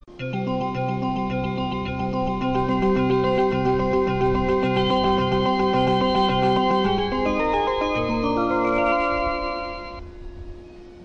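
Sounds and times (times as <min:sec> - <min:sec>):
melody: 0:00.1 - 0:10.3.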